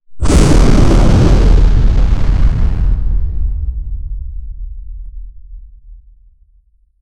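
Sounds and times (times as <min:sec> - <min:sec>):
massive smoky roar: 0:00.2 - 0:04.0.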